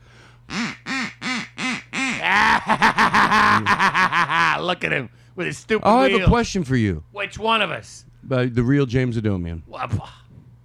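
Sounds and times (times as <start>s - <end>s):
duck quacking: 0.5s - 2.5s
laughter: 2.2s - 4.6s
speech: 2.3s - 4.0s, 4.6s - 10.2s.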